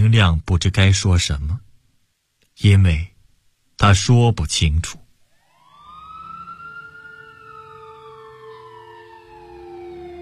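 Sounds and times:
speech: 0.1s - 1.6s, 2.6s - 3.1s, 3.8s - 5.0s
police car siren wailing: 5.3s - 10.2s.

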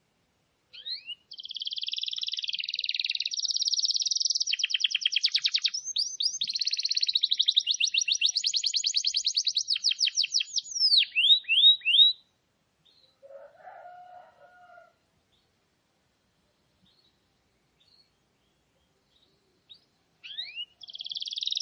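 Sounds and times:
wild canary singing rolling trills: 0.7s - 13.2s, 19.1s - 21.6s.

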